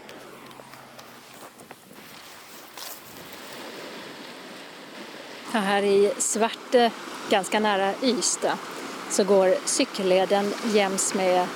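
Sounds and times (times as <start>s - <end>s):
footsteps crunching on outdoor ground walking down toward the sea at Svarte: 0.0s - 3.9s
steady broad hiss of wind and surf at Svarte near Ystad: 0.0s - 11.5s
speech: 5.5s - 11.5s.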